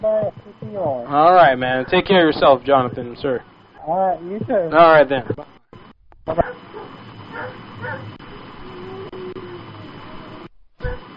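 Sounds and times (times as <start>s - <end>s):
speech: 0.0s - 5.6s, 6.3s - 8.2s
steady hiss: 0.0s - 11.1s
dogs barking in telephone-quality bursts: 1.7s - 2.1s, 6.4s - 8.2s.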